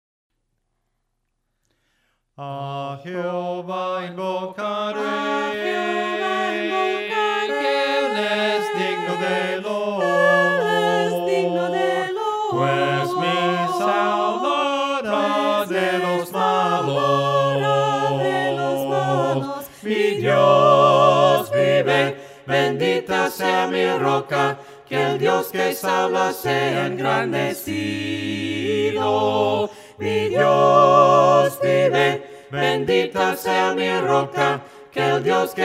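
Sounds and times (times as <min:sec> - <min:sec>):
voices singing hymns a cappella: 0:02.4 - 0:35.6.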